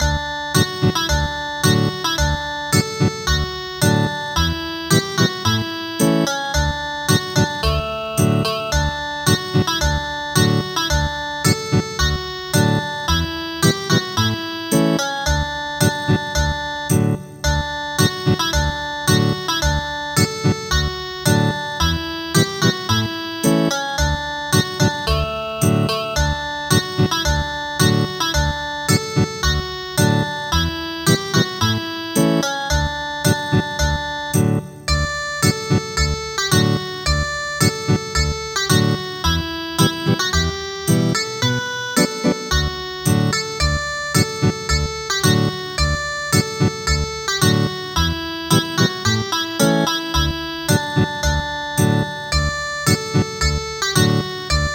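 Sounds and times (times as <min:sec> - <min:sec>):
traditional village dance music on ethnic guitar: 0:00.0 - 0:41.2, 0:42.0 - 0:54.7.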